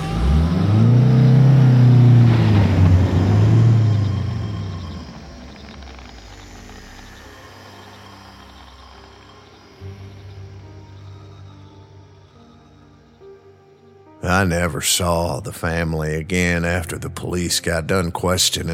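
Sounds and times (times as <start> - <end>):
car engine revving hard while starting and reversing away: 0.0 - 13.4
quiet low rumble: 0.0 - 15.8
faint insect-like chirping: 3.1 - 14.2
speech: 14.4 - 18.7.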